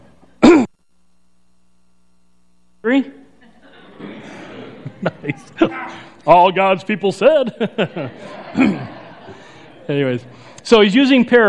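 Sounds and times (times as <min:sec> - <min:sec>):
person in a church congregation clearing throat: 0:00.4 - 0:00.7, 0:05.3 - 0:06.2, 0:08.5 - 0:09.0
speech: 0:02.9 - 0:03.2, 0:05.0 - 0:08.9, 0:09.9 - 0:11.4
laughter: 0:03.4 - 0:10.5.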